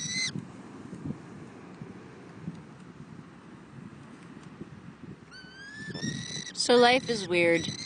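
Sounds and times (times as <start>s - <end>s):
falconry birds of prey giving shrill screechy calls: 0.0s - 0.3s, 5.3s - 7.8s
steady wash of wind: 0.0s - 7.8s
speech: 6.7s - 7.8s.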